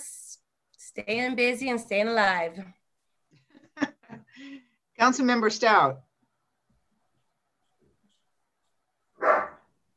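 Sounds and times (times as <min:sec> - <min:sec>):
speech: 0:01.0 - 0:02.8, 0:04.4 - 0:06.1
dog barking: 0:09.2 - 0:09.7.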